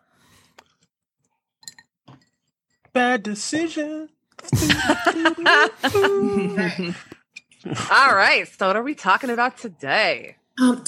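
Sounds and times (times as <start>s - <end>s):
glasses clinking in a toast: 1.6s - 2.8s
speech: 3.0s - 10.8s
laughter: 4.5s - 8.0s.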